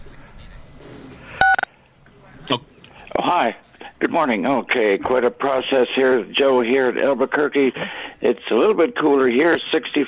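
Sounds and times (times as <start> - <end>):
quiet phone line hiss: 1.2 - 1.7, 9.5 - 10.0
phone keypad touch-tones: 1.4 - 1.7
speech: 2.5 - 10.0.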